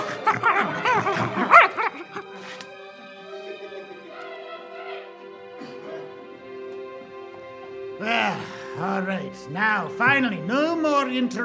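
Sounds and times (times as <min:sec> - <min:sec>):
mongrel dogs barking and yipping: 0:00.0 - 0:02.2
laughter: 0:00.0 - 0:06.2
speech: 0:09.4 - 0:11.4.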